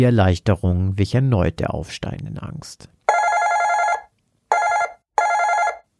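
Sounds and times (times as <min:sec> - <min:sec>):
speech: 0:00.0 - 0:03.0
phone ringing: 0:03.1 - 0:05.9.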